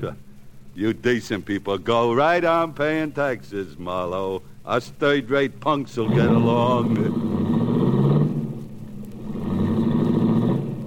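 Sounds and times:
speech: 0:00.0 - 0:07.4
baby blue foreign-made right-hand-drive convertible engine revving and pulling away: 0:06.0 - 0:10.8.

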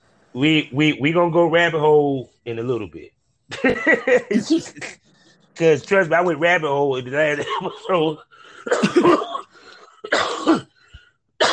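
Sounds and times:
speech: 0:00.4 - 0:05.0, 0:05.6 - 0:09.3
laughter: 0:03.5 - 0:05.0, 0:07.2 - 0:09.2
person coughing after smoking a blunt: 0:07.3 - 0:10.8.

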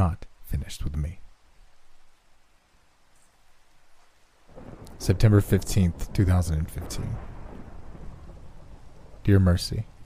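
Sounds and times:
speech: 0:00.0 - 0:01.2, 0:04.6 - 0:07.3, 0:09.2 - 0:09.9
steady rainfall: 0:00.0 - 0:10.0
low rumble of thunder: 0:04.5 - 0:10.0.

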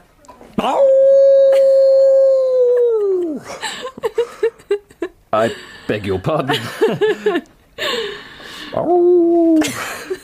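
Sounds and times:
speech: 0:00.6 - 0:00.9, 0:05.4 - 0:07.5, 0:08.8 - 0:09.9
person imitating a dog howling: 0:00.6 - 0:03.4, 0:08.8 - 0:09.7
laughter: 0:02.6 - 0:07.5.

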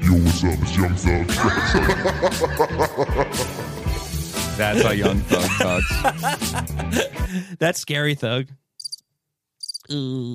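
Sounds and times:
speech: 0:00.1 - 0:03.7, 0:04.6 - 0:08.6, 0:09.9 - 0:10.3
laughter: 0:00.4 - 0:03.9, 0:04.6 - 0:07.5
cricket chirping: 0:08.8 - 0:09.1, 0:09.6 - 0:09.9.

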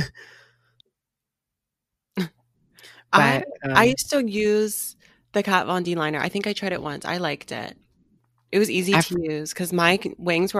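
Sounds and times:
person coughing: 0:00.0 - 0:00.3, 0:03.2 - 0:03.8
speech: 0:03.1 - 0:07.8, 0:08.5 - 0:10.5.

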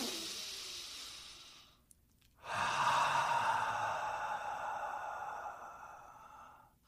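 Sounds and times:
slow deep breathing in through the nose and out through the mouth: 0:00.0 - 0:01.8, 0:02.4 - 0:06.8.

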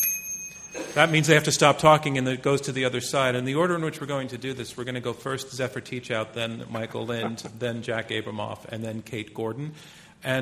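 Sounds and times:
timer bell ringing at a debate: 0:00.0 - 0:01.6
speech: 0:01.0 - 0:10.4
laughter: 0:06.7 - 0:07.8.

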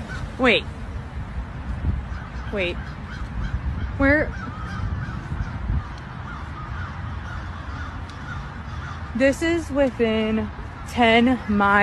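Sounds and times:
broadband noise: 0:00.0 - 0:11.8
speech: 0:00.4 - 0:00.8, 0:02.5 - 0:03.0, 0:04.0 - 0:04.6, 0:09.2 - 0:11.8
crows cawing: 0:02.1 - 0:09.4.

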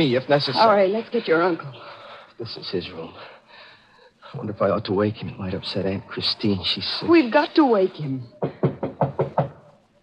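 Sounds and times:
speech: 0:00.0 - 0:03.4, 0:04.3 - 0:08.7
quick firm knocking on a wooden door: 0:08.4 - 0:09.6.

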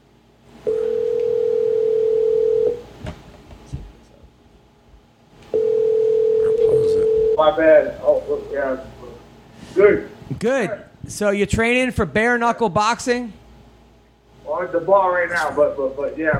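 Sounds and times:
phone ringback tone: 0:00.7 - 0:02.8, 0:05.5 - 0:07.4
speech: 0:07.5 - 0:08.9, 0:09.8 - 0:13.4, 0:14.6 - 0:16.3.

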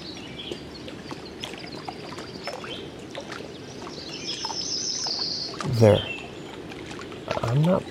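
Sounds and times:
yellow-rumped warbler singing ringing chirps and trill: 0:00.0 - 0:02.9, 0:03.5 - 0:06.6
speech: 0:05.6 - 0:06.1, 0:07.5 - 0:07.8.

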